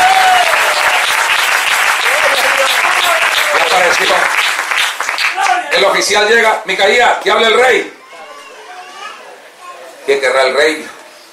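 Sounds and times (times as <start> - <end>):
church congregation applauding at a preaching service: 0.0 - 6.0
speech: 5.8 - 8.0, 10.1 - 11.0.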